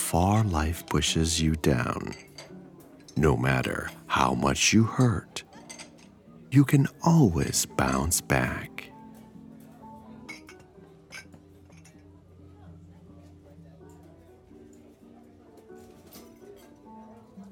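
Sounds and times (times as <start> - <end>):
speech: 0.1 - 2.3, 3.2 - 5.4, 6.5 - 8.9
glasses and cutlery clinking in a busy cafe: 1.8 - 4.1, 5.0 - 6.2, 10.3 - 12.1.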